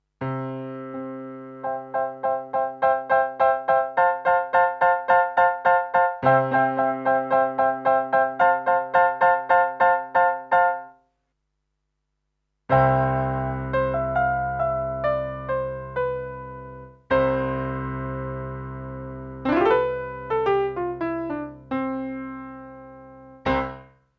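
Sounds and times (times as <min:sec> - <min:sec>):
Roland piano through Tech 21 QStrip: 0:00.0 - 0:11.1, 0:12.7 - 0:24.1.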